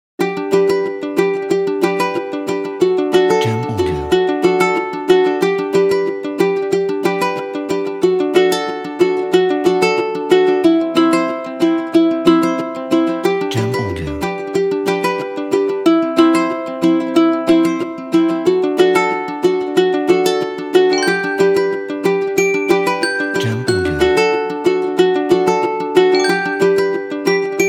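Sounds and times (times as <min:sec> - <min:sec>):
children's ukulele: 0:00.2 - 0:27.6
bells: 0:21.0 - 0:21.6, 0:22.4 - 0:24.4, 0:26.2 - 0:27.0.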